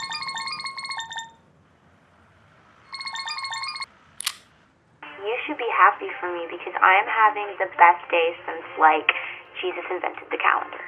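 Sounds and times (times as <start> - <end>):
phone ringtone with warbling electronic tones: 0.0 - 1.4, 2.9 - 3.9
sharp click: 4.2 - 4.5
speech: 5.6 - 10.8.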